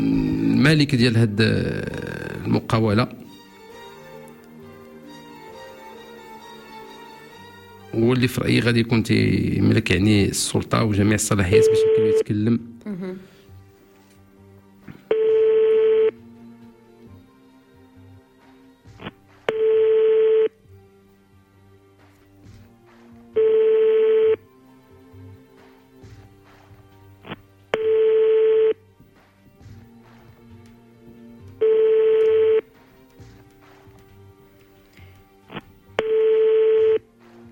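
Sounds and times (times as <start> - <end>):
speech: 0.6 - 3.2, 8.0 - 13.3
telephone ringing tone on a business owner's line: 11.5 - 12.2, 15.1 - 16.2, 19.5 - 20.6, 23.4 - 24.4, 27.8 - 28.8, 31.6 - 32.7, 36.0 - 37.0.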